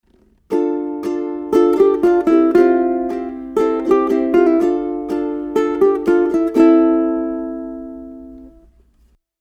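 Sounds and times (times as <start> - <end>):
ukulele bridge lick: 0.1 - 8.9.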